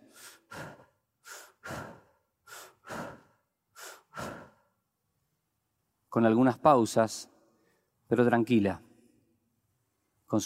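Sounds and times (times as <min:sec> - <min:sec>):
shallow breathing of a sleeping patient: 0:00.0 - 0:04.8
speech: 0:06.1 - 0:07.3, 0:08.1 - 0:08.9, 0:10.3 - 0:10.4.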